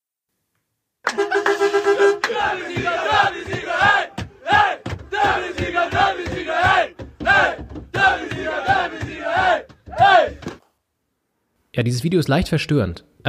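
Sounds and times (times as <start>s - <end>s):
short sustained horn-like tone: 1.1s - 2.6s
crowd of football fans chanting and roaring welcoming their team: 1.1s - 10.6s
speech: 11.8s - 13.2s.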